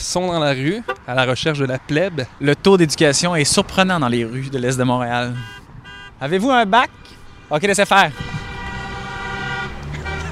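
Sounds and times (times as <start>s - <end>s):
speech: 0.0s - 5.6s, 6.2s - 8.3s
traffic rumble: 0.0s - 10.3s
car horns honking in a busy street in eastern Montreal after a match: 0.8s - 1.2s, 5.2s - 6.4s, 8.0s - 10.3s.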